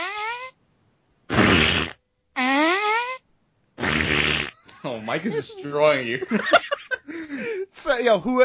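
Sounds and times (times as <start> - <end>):
buzzy mouth raspberry farts: 0.0 - 0.6, 1.3 - 3.2, 3.8 - 4.6
soundboard fart sound: 0.0 - 0.6, 1.3 - 4.7
laughter: 4.6 - 7.7
speech: 4.8 - 8.4.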